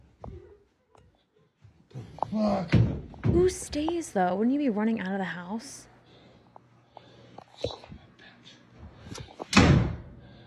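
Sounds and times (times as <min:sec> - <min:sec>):
speech: 0:02.3 - 0:05.9
door slamming shut with a booming bang: 0:09.4 - 0:10.1.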